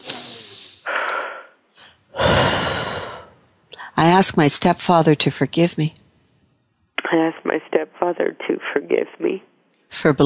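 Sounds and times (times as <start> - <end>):
breathy inhales during a guided forgiveness exercise: 0.0 - 3.4
speech: 4.0 - 6.0, 7.2 - 10.2.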